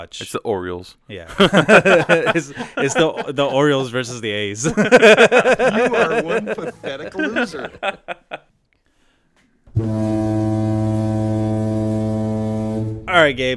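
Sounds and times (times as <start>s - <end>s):
speech: 0.0s - 8.5s, 9.8s - 10.8s, 13.1s - 13.5s
laughter: 1.3s - 8.5s
deep foghorn blast: 9.7s - 13.1s.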